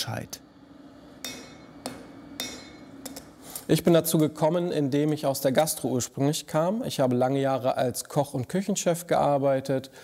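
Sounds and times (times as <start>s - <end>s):
speech: 0.0s - 0.4s, 3.7s - 10.0s
hammer forging steel for a knife in a knifemaker's workshop: 1.1s - 4.4s.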